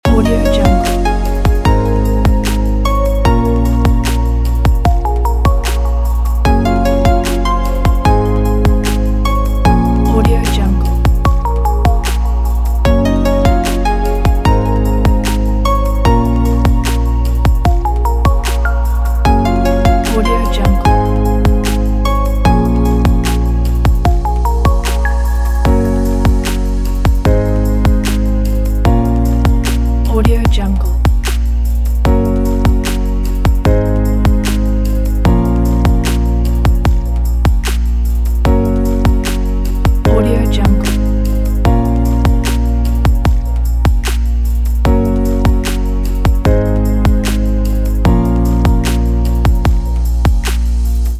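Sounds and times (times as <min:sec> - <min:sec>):
background promo music loop: 0:00.0 - 0:51.1.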